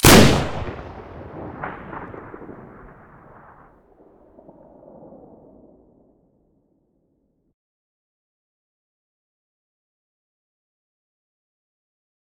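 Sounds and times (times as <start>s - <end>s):
AA12 weapon muzzle blast: 0.0s - 3.0s.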